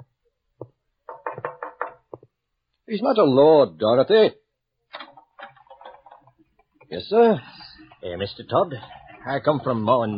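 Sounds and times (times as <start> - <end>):
man knocking firmly on the front door of a house: 1.1 - 2.3
speech: 2.9 - 4.4, 6.9 - 10.1.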